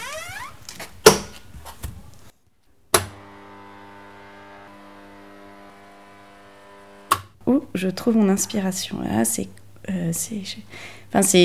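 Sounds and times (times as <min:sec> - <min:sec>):
door creaking open on squeaky hinges: 0:00.0 - 0:01.9
shuffling: 0:00.0 - 0:02.3
speech: 0:07.8 - 0:11.4.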